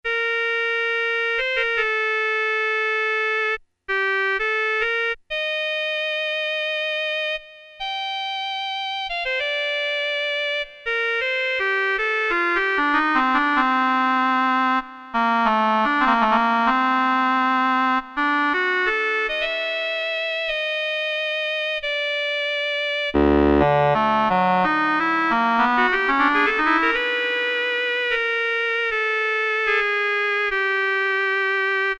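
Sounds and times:
oboe preset sound on a Casio MT-68 keyboard: 0.1s - 31.9s.

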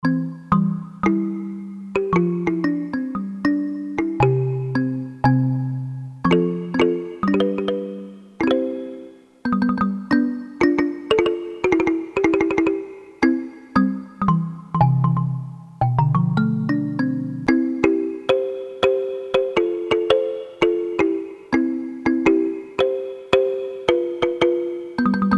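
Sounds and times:
ethnic percussion: 0.0s - 25.3s
kalimba: 0.0s - 25.3s.

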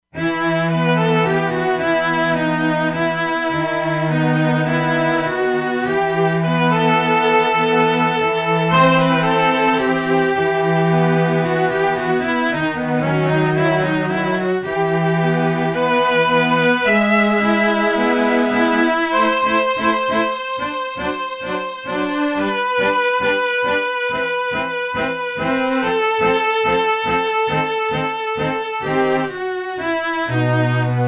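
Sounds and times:
solo chamber strings synth preset on E-mu Proteus-2: 0.2s - 31.0s.

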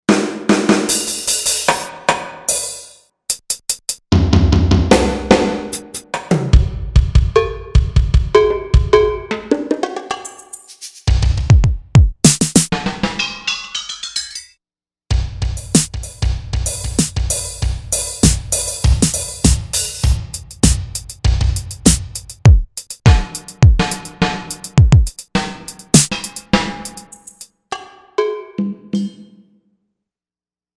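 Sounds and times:
drum kit on a synthesizer: 0.1s - 13.2s, 15.1s - 27.5s.

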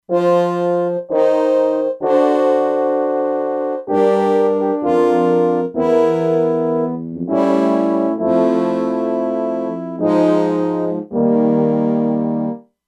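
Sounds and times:
synthesizer horn section preset: 0.1s - 12.6s.

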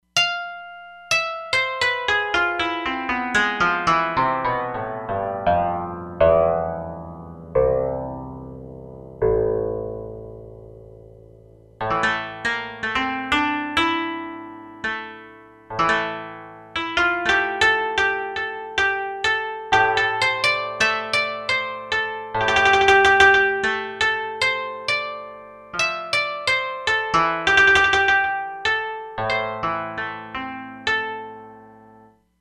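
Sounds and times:
koto factory patch on E-mu Proteus-3 synthesizer: 0.0s - 32.2s.

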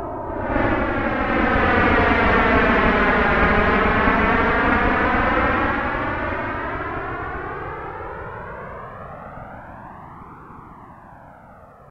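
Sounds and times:
synthesizer jet sound: 0.2s - 8.2s.

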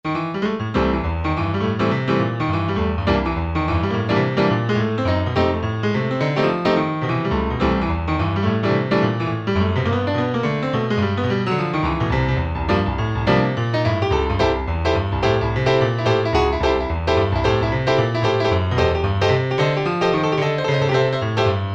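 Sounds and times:
bright classic stereo jazz piano: 0.0s - 21.7s.

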